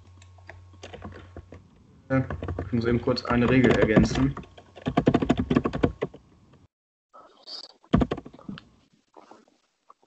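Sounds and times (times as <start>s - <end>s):
loud rapid computer keyboard typing: 0.8s - 6.2s, 7.9s - 8.5s
speech: 2.1s - 4.5s.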